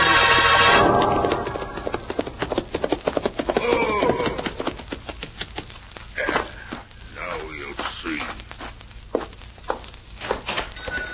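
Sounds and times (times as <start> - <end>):
horses galloping: 0.2 - 11.1.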